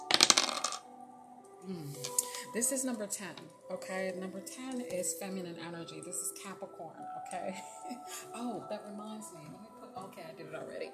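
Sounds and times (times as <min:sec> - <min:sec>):
dice clattering across a hard surface: 0:00.0 - 0:00.8
speech: 0:01.6 - 0:10.9.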